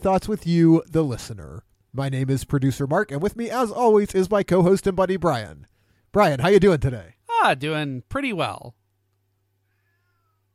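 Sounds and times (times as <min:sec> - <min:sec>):
speech: 0:00.0 - 0:08.8
steady low electrical hum: 0:00.0 - 0:10.5
drawn-out cat meow: 0:09.7 - 0:10.5.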